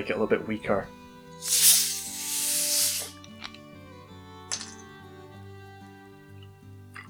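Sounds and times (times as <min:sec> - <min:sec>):
speech: 0:00.0 - 0:01.7
soda water splashed into a cocktail glass: 0:01.4 - 0:03.2
light glassy clinks: 0:04.5 - 0:04.9.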